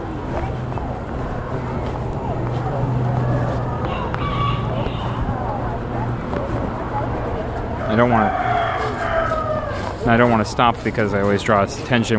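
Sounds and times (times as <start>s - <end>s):
indistinct voices: 0.0s - 12.1s
steady low engine rumble: 0.0s - 12.1s
chickens crowing in a neighborhood: 3.1s - 5.7s, 7.4s - 11.1s
speech: 8.0s - 8.4s, 10.1s - 12.1s.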